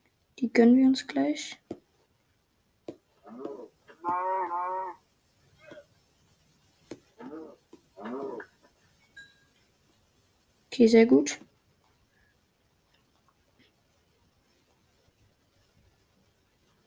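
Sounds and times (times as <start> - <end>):
speech: 0.4 - 1.7, 10.8 - 11.5
cow mooing: 3.3 - 5.0, 7.2 - 8.4.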